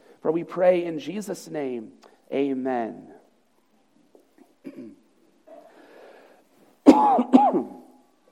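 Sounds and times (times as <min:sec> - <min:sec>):
speech: 0:00.2 - 0:03.2, 0:07.0 - 0:07.8
loud harsh coughs: 0:04.6 - 0:05.0, 0:06.8 - 0:08.0
soft throat clearing: 0:04.6 - 0:05.1, 0:06.9 - 0:07.9.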